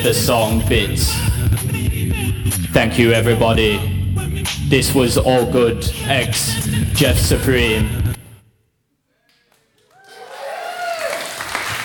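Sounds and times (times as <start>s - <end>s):
speech: 0.0s - 1.8s, 2.4s - 8.0s
audience applause: 9.2s - 11.8s
voices or cheers from a crowd: 9.8s - 11.8s.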